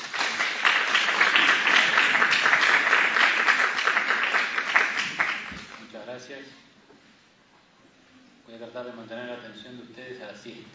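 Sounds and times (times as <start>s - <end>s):
audience applause at a conference lecture: 0.0s - 5.7s.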